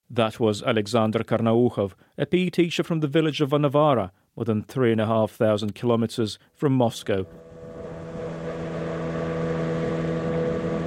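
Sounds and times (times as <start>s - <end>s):
speech: 0.2s - 7.5s
boat engine droning while moving down a river: 7.2s - 10.8s.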